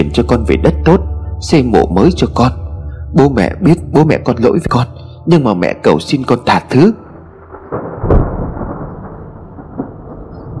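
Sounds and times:
speech: 0.0 - 7.0
thunder crack and rumble: 7.2 - 10.5.

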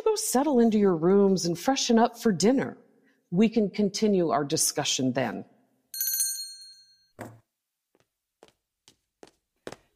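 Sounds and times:
speech: 0.2 - 5.5
small hand bell ringing to summon a servant: 6.0 - 7.1
footsteps approaching: 7.2 - 9.9.

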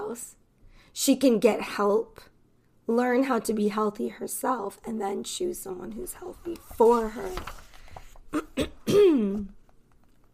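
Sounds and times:
speech: 0.1 - 2.3, 2.9 - 7.6, 8.3 - 9.6
throat clearing: 8.3 - 9.5.

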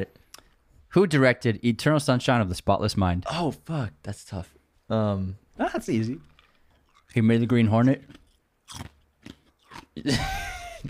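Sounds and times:
speech: 0.9 - 6.3, 7.1 - 9.0, 10.0 - 10.8
person chewing ice: 6.2 - 10.0.

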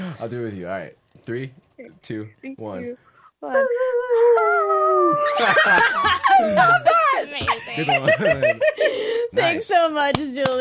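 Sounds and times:
speech: 0.2 - 10.5
children's voices imitating a wolf howl together: 3.7 - 5.6
laughter: 5.1 - 9.3.

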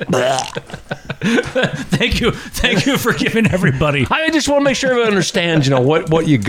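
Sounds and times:
wet belch from drinking beer while running a race: 0.0 - 0.7
laughter: 0.0 - 6.4
speech: 0.0 - 6.4.

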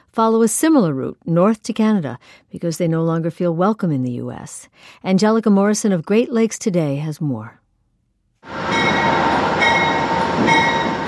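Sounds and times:
speech: 0.2 - 7.6
Amtrak passenger train pulling into station: 8.4 - 11.0
thin metallic squealing from train wheels or brakes: 8.7 - 11.0.

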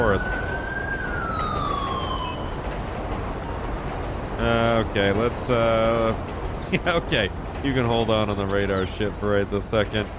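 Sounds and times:
police car siren on a Taurus winding down: 0.0 - 3.6
steady loud rumble of engine and road noise: 0.0 - 10.1
speech: 0.2 - 0.4, 4.4 - 10.1.

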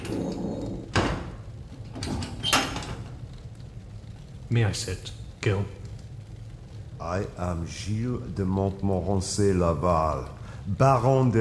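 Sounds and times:
door being pushed shut: 0.0 - 3.2
low steady room background: 0.0 - 11.4
speech: 4.5 - 5.9, 7.0 - 11.4.

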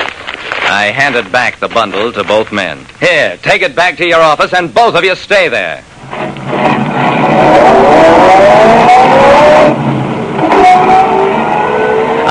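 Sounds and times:
speech: 0.7 - 5.9
car engine revving and driving away: 6.0 - 12.3.

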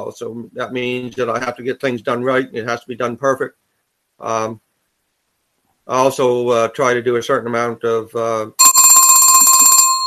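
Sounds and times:
speech: 0.1 - 3.6, 4.2 - 4.6, 5.9 - 8.7
telephone bell ringing in a fast metallic trill: 8.6 - 10.0.

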